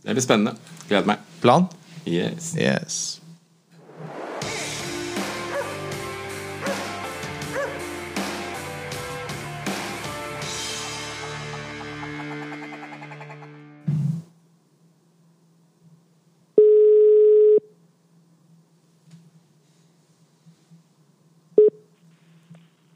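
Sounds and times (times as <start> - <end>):
speech: 0.0 - 3.2
low electrical hum: 0.0 - 3.8, 14.3 - 22.9
short podcast music jingle: 4.4 - 12.8
telephone line ringing tone: 16.6 - 17.6.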